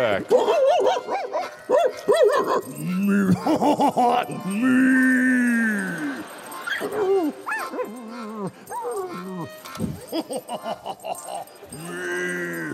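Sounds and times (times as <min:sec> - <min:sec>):
speech: 0:00.0 - 0:05.3, 0:09.4 - 0:12.7
dog barking in short bursts: 0:00.3 - 0:02.8
dog whimpering and whining: 0:00.3 - 0:12.7
laughter: 0:02.4 - 0:12.7.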